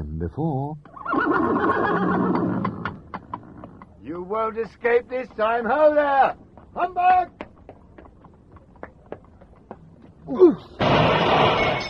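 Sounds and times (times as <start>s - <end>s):
speech: 0.2s - 2.7s, 4.1s - 7.4s, 10.3s - 11.5s
horse neighing: 0.9s - 3.8s.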